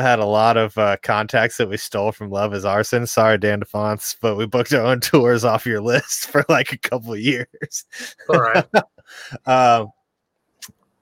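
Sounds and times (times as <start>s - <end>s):
speech: 0.0s - 10.0s
laughter: 7.3s - 9.5s
person sneezing: 8.0s - 9.4s.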